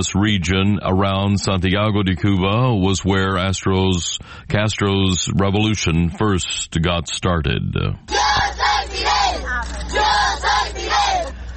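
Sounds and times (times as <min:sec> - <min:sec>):
speech: 0:00.0 - 0:10.0
crowd of children chanting in unison on streets of Santiago de Cuba: 0:08.1 - 0:11.3.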